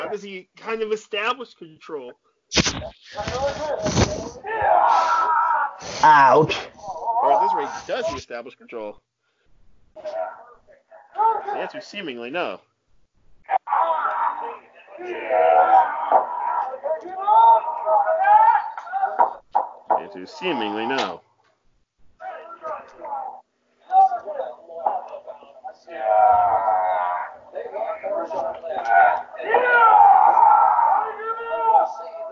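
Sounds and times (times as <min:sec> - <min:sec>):
speech: 0:00.1 - 0:09.1, 0:10.0 - 0:10.4, 0:11.2 - 0:12.7, 0:13.7 - 0:19.4, 0:20.0 - 0:21.3
wrestlers yelling and grunting during a match: 0:03.1 - 0:08.2, 0:10.0 - 0:12.2, 0:13.4 - 0:21.2, 0:22.2 - 0:32.3.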